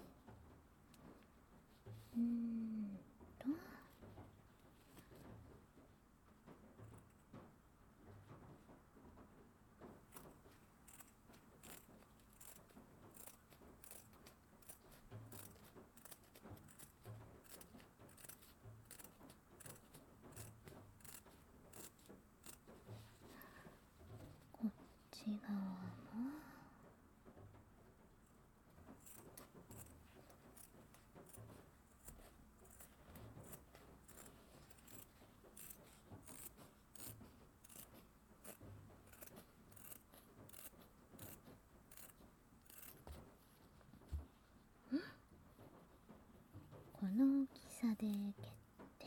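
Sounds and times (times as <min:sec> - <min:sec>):
speech: 0:02.2 - 0:02.4, 0:47.1 - 0:48.6
soft rustle: 0:03.8 - 0:07.5, 0:08.1 - 0:26.0, 0:27.2 - 0:49.0
scissors cutting fabric: 0:09.9 - 0:25.0, 0:28.2 - 0:44.3.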